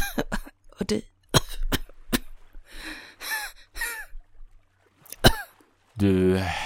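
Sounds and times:
person coughing up water on a stony beach after swimming: 0.0s - 0.6s, 1.3s - 2.4s, 5.1s - 5.6s
speech: 0.2s - 1.1s, 6.0s - 6.6s
strained breaths: 2.6s - 3.7s, 6.4s - 6.6s.

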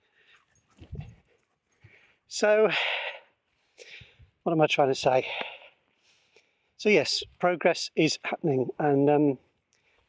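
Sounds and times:
dog panting softly: 0.3s - 2.0s
speech: 2.3s - 3.0s, 4.4s - 5.5s, 6.8s - 9.5s.

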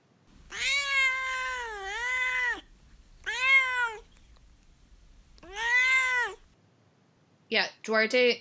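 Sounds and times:
cat meowing: 0.4s - 4.2s, 5.4s - 6.6s
speech: 7.5s - 8.4s.

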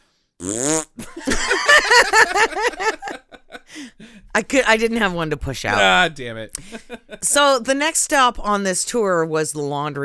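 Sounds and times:
short buzzy fart noise: 0.4s - 1.1s
loud rhythmic laughter and chuckles: 1.0s - 3.9s, 6.6s - 7.2s
speech: 2.1s - 3.0s, 4.4s - 10.0s.

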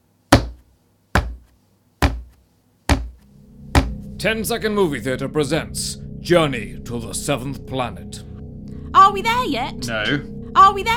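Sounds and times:
solid knocks: 0.3s - 0.6s, 1.2s - 4.0s
speech: 4.2s - 8.3s, 9.0s - 10.9s.

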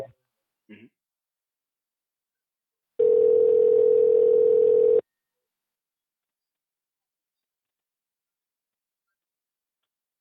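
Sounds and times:
telephone ringback tone as a call is placed: 3.0s - 5.0s.

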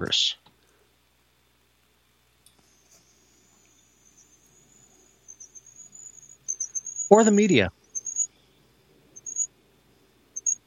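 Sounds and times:
speech: 0.0s - 0.4s, 7.1s - 7.8s
high-pitched cricket-like squeak: 2.7s - 8.3s, 9.2s - 9.5s, 10.4s - 10.6s.

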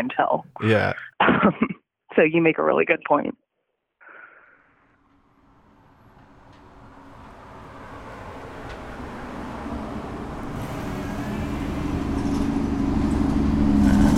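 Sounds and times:
bus engine rumbling along the street: 0.0s - 1.1s, 5.0s - 14.1s
speech: 0.0s - 3.4s.

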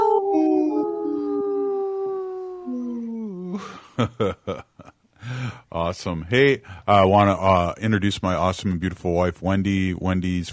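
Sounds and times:
wolf howling: 0.0s - 3.6s
speech: 3.6s - 4.7s, 5.8s - 10.5s.

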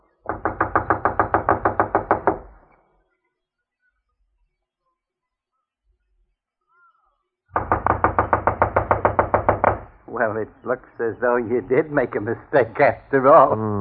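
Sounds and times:
knocking on the back door of a run-down unoccupied house: 0.3s - 2.6s, 7.6s - 10.0s
speech: 10.3s - 13.8s.

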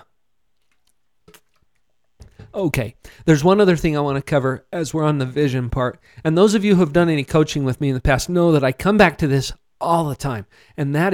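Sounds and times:
sipping and swallowing water: 0.0s - 3.4s
speech: 2.6s - 11.1s.

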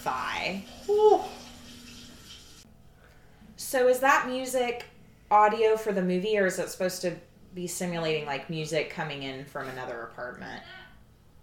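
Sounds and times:
speech: 0.0s - 1.3s, 3.7s - 10.8s
water running from a shower as a woman showers: 0.0s - 2.7s.

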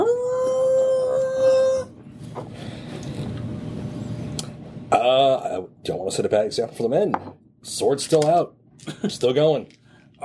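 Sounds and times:
person imitating a wolf howl in a swamp: 0.0s - 1.9s
low rumbling background: 0.0s - 7.9s
speech: 5.8s - 10.2s.

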